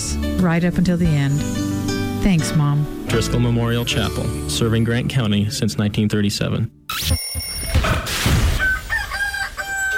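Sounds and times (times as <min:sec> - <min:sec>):
speech: 0:00.2 - 0:07.5
rooster crowing: 0:08.5 - 0:09.9.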